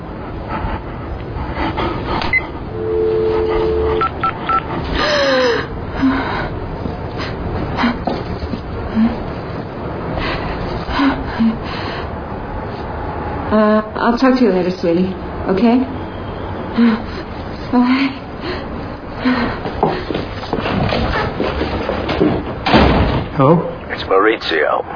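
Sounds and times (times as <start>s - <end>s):
low noise: 0.0s - 24.9s
telephone keypad tones as a number is dialed: 2.3s - 4.6s
speech: 14.1s - 16.0s, 16.8s - 17.1s, 17.8s - 18.2s, 24.3s - 24.9s.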